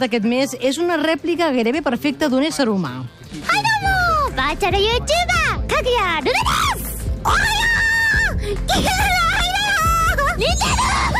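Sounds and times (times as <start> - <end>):
speech: 0.0 - 7.7, 8.5 - 9.6
high-pitched female voice of a virtual youtuber shrieking and squealing: 6.3 - 11.1.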